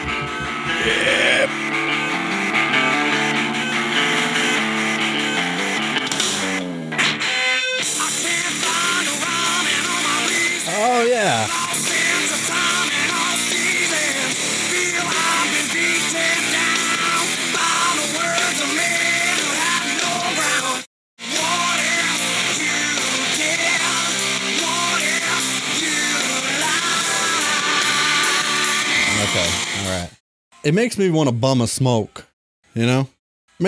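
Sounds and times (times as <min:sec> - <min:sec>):
hard rock song with heavy distorted instruments: 0:00.0 - 0:29.9
person yelling vocals in a hard rock song: 0:00.7 - 0:01.5
speech: 0:00.8 - 0:01.6, 0:30.7 - 0:33.6.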